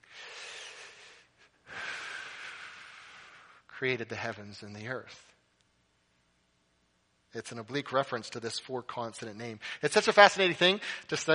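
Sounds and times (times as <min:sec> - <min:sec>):
slow human breathing in and out: 0:00.0 - 0:03.7, 0:10.8 - 0:11.1
speech: 0:03.8 - 0:05.4, 0:07.3 - 0:11.3.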